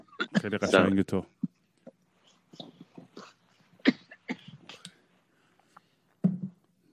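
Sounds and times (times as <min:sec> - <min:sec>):
short harsh coughs: 0:00.0 - 0:01.0, 0:02.2 - 0:05.0
speech: 0:00.3 - 0:01.4.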